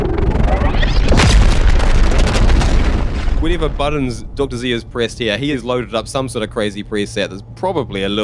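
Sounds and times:
sci-fi video game plasma gun firing a bolt: 0.0s - 5.3s
speech: 3.6s - 8.2s.

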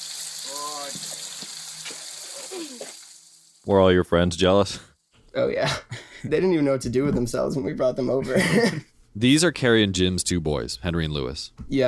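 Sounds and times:
hose spraying cold water onto elephant: 0.0s - 4.5s
speech: 2.4s - 3.0s, 3.6s - 11.8s.

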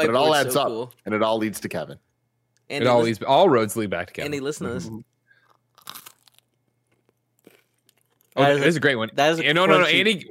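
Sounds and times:
speech: 0.0s - 2.1s, 2.7s - 5.1s, 8.4s - 10.2s
person chewing crunchy food: 5.4s - 8.4s.

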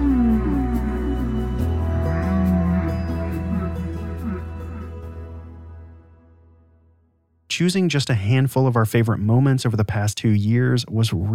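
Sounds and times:
whale moans and whoops underwater in the ocean: 0.0s - 5.3s
speech: 7.6s - 11.3s.

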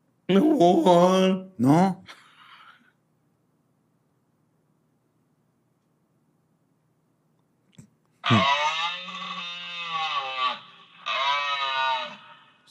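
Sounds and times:
speech: 0.3s - 2.2s, 8.3s - 8.6s
moose nasal bellows: 8.2s - 12.2s.

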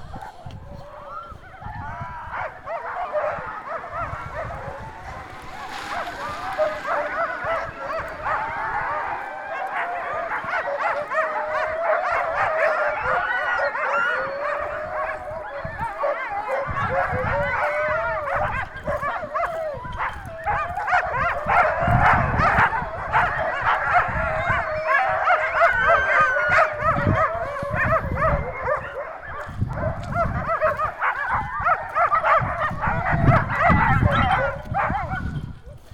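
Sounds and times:
huge white wolfy dogs in kennels and on chains howling: 0.0s - 35.9s.

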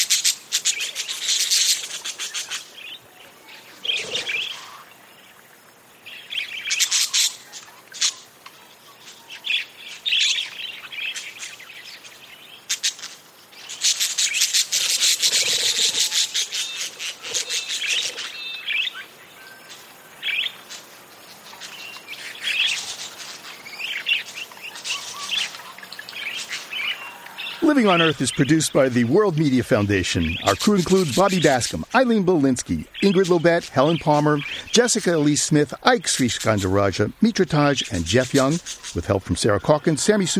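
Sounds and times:
dense flock of wild budgerigars chattering: 0.0s - 4.9s, 6.1s - 8.3s, 13.6s - 20.6s, 21.6s - 40.3s
speech: 27.8s - 40.3s.

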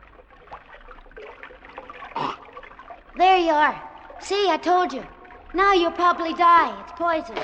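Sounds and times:
splash of someone scooping a drink from a stream: 0.0s - 5.9s
stream water trickling and burbling: 0.0s - 7.4s
speech: 3.2s - 7.4s.

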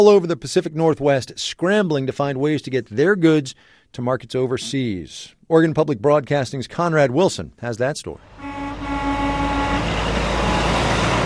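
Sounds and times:
speech: 0.0s - 8.6s
tangle of trucks idling outside a container yard in Portland, Oregon: 8.2s - 11.2s.

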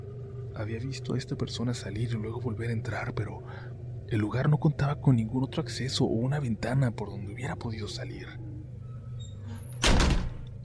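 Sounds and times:
quiet hum: 0.0s - 10.6s
speech: 0.6s - 8.4s
door slamming shut: 9.7s - 10.5s.

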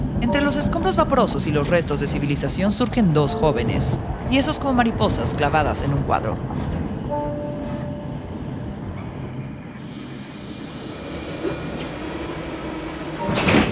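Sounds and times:
train rumbling: 0.0s - 13.7s
speech: 0.2s - 6.7s
thin metallic train wheel squeals: 9.2s - 12.0s.

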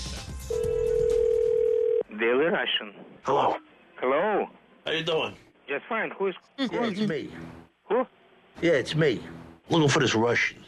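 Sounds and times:
noise: 0.0s - 10.6s
telephone line tone as a phone call is placed: 0.5s - 2.0s
speech: 2.2s - 3.6s, 4.9s - 10.6s.

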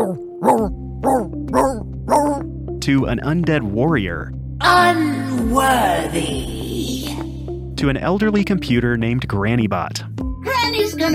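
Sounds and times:
voice actor imitating a singing dog with tuneful yelping barks: 0.0s - 2.4s
speech: 0.1s - 0.8s, 2.8s - 7.0s, 7.8s - 10.1s, 11.0s - 11.1s.

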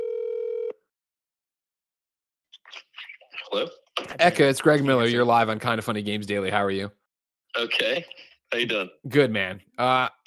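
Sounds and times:
electronic ringback tone from a phone line: 0.0s - 0.8s
speech: 2.7s - 7.0s, 7.6s - 10.2s.

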